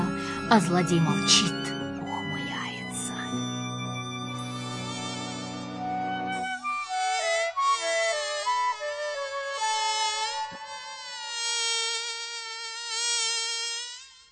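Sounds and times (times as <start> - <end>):
speech: 0.5 - 1.6
low droning tone: 1.0 - 6.7
high whining mosquito buzzing in flight: 1.1 - 14.3.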